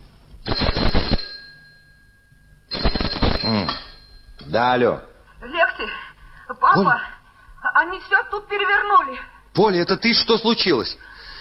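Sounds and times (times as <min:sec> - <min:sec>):
telephone ringing at dawn: 0:00.4 - 0:04.4
speech: 0:04.5 - 0:05.1, 0:06.7 - 0:07.1, 0:07.8 - 0:11.1.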